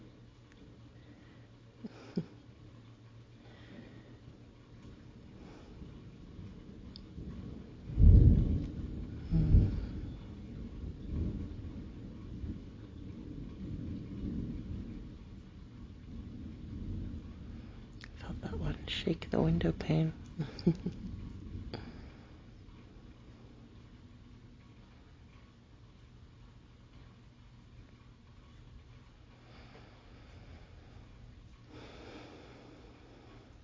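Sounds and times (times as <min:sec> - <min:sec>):
steady rain: 0:00.0 - 0:33.6
heavy rumbles of thunder: 0:03.1 - 0:33.6
speech: 0:19.6 - 0:21.1.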